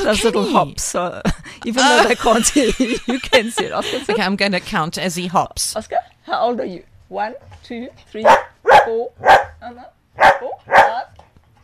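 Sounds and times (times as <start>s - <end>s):
laughter: 0.0s - 0.6s, 1.6s - 4.4s
speech: 0.0s - 11.1s
female dog barking: 8.2s - 9.6s, 10.2s - 11.1s.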